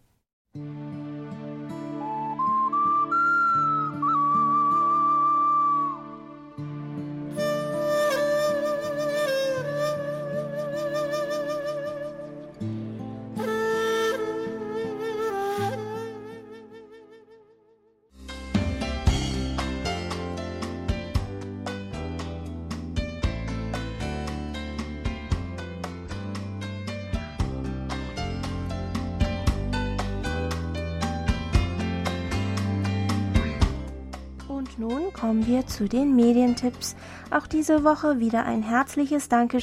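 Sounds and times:
melodic instrumental song with bright lead line: 0:00.6 - 0:17.4, 0:18.2 - 0:37.7
speech: 0:35.2 - 0:39.6.

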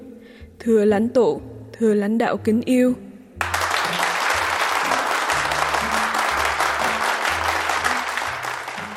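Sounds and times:
speech: 0:00.6 - 0:03.1
large crowd applauding in a hall: 0:03.4 - 0:08.9.

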